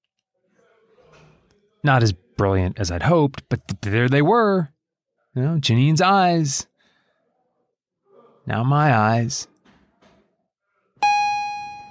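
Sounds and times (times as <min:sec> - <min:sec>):
speech: 0:01.8 - 0:06.7, 0:08.5 - 0:09.5
bell ringing: 0:11.0 - 0:11.8.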